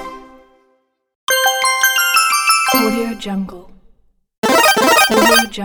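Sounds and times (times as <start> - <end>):
tablet menu sound effects: 1.3 - 3.3, 4.4 - 5.5.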